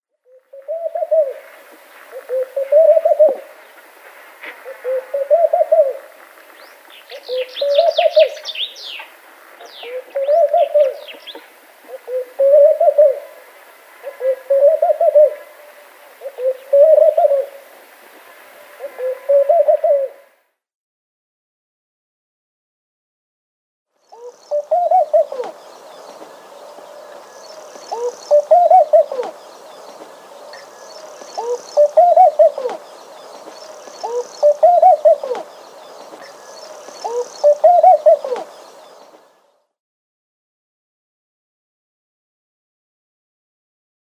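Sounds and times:
male Laughing Dove calling in display: 0.3s - 17.7s, 18.8s - 20.3s, 24.2s - 39.3s.

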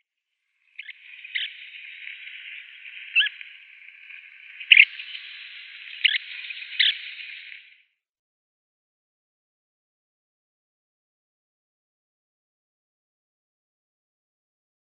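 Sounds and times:
Long-toed Stint calls: 0.6s - 7.8s.

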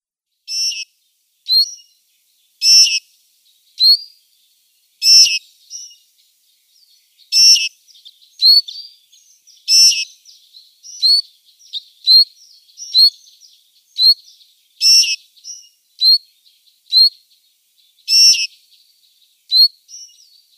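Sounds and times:
Citril Finch calls: 0.5s - 0.9s, 1.5s - 1.9s, 2.6s - 3.0s, 3.8s - 4.2s, 5.0s - 6.0s, 7.3s - 20.5s.

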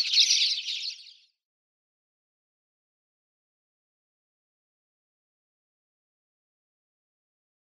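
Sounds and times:
Spanish sparrow chirping: 0.0s - 1.2s.

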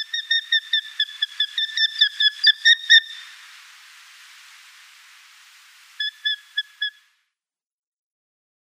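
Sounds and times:
Eurasian hobby nestling shrill calls and squeals: 0.0s - 7.2s
hissing: 0.2s - 7.1s.

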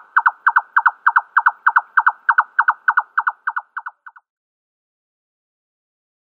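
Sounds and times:
male red-necked nightjar display song of hollow double knocks: 0.0s - 4.2s.

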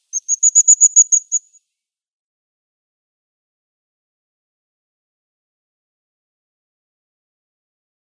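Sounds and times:
crested tit calling: 0.2s - 1.6s.

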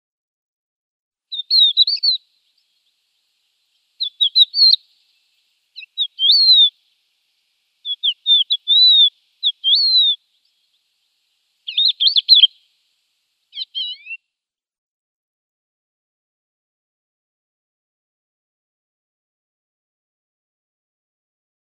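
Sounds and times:
Thekla Lark calls: 1.3s - 2.2s, 4.0s - 5.0s, 5.8s - 6.8s, 7.8s - 10.6s, 11.6s - 12.6s, 13.5s - 14.2s.

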